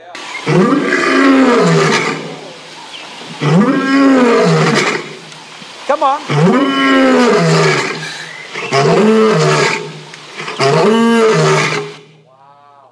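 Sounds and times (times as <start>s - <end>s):
crowd of voices imitating a lion roaring: 0.4s - 2.7s, 3.4s - 5.2s, 6.3s - 12.0s
speech: 6.0s - 7.6s.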